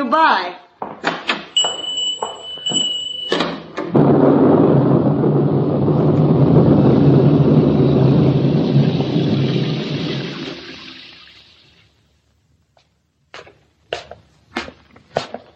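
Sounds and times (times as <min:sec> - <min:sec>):
speech: 0:00.0 - 0:01.1
loud rolling thunder: 0:02.6 - 0:11.4
rain: 0:03.9 - 0:12.0.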